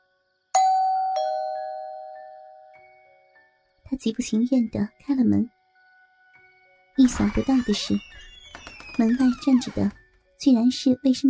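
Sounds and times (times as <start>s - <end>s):
home doorbell two-tone ding-dong: 0.6s - 2.7s
speech: 3.9s - 5.6s, 7.0s - 8.3s, 9.0s - 11.2s.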